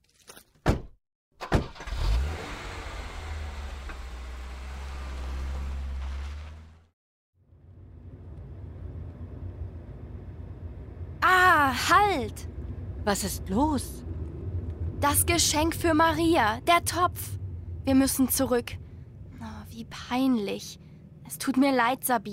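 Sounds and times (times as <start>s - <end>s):
car doors shutting: 0.7s - 6.8s
car engine turning over and rumbling: 1.4s - 6.9s, 7.5s - 22.0s
speech: 11.9s - 14.0s, 15.0s - 18.8s, 19.8s - 22.3s.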